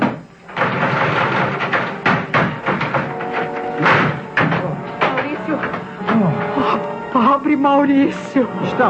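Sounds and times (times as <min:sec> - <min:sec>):
wooden door rattle: 0:00.0 - 0:06.2
locked upstairs bedroom door being forced open: 0:00.0 - 0:06.6
speech: 0:07.6 - 0:08.8.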